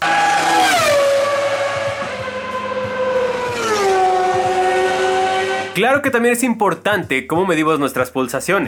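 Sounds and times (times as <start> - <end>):
Formula 1 race car engine screaming past with downshifts: 0.0 - 5.8
speech: 5.8 - 8.6.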